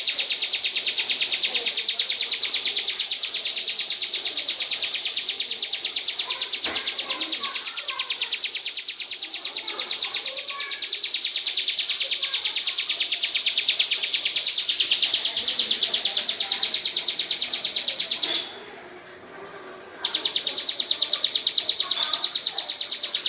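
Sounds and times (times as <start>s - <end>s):
magpie-robin song: 0.0s - 18.5s, 20.0s - 23.2s.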